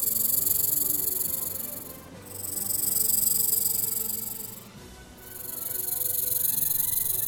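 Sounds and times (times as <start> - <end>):
big snakes hissing in a valley: 0.0 - 7.2.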